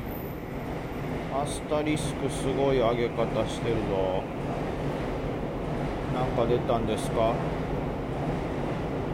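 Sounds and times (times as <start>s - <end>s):
train passing with a low rumble: 0.0s - 9.1s
speech: 1.4s - 4.6s, 6.2s - 7.6s.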